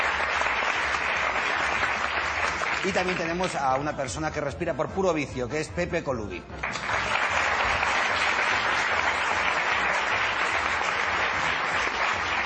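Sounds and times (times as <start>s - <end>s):
crowd applause: 0.0s - 3.6s, 6.6s - 12.4s
speech: 2.8s - 7.1s.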